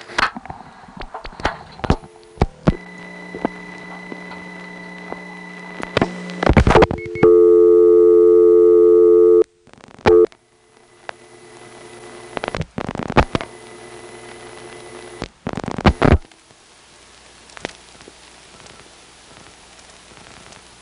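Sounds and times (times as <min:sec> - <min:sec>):
long steady loud telephone tone: 0:01.7 - 0:12.4
telephone keypad dialing tones: 0:06.9 - 0:09.4.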